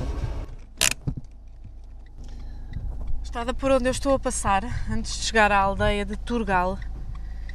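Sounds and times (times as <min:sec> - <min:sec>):
dull knocks and thumps: 0:00.0 - 0:03.3
car driving on a narrow road overgrown with young eucalyptus: 0:00.0 - 0:07.5
speech: 0:03.4 - 0:06.9.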